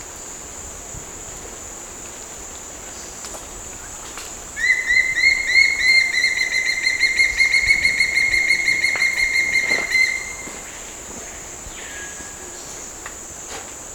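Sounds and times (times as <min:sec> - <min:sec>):
Morphnus guianensis calling: 0:04.6 - 0:10.7.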